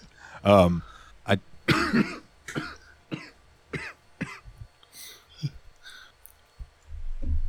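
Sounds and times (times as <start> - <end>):
breathy exhale: 0.0 - 1.2, 4.9 - 6.2
speech: 0.4 - 2.1
quieter throat-clearing hacks: 1.7 - 4.5
person coughing after choking on spit: 1.7 - 5.6.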